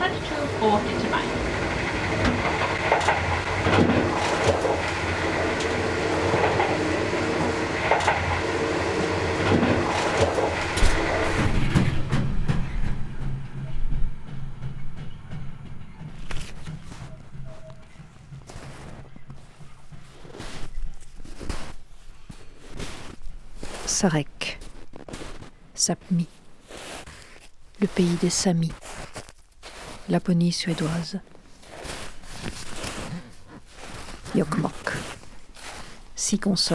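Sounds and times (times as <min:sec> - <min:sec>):
train rumbling along rails with rhythmic clacking: 0:00.0 - 0:27.9
speech: 0:24.0 - 0:24.3, 0:25.8 - 0:26.4, 0:27.8 - 0:28.8, 0:30.1 - 0:31.3, 0:36.3 - 0:36.7.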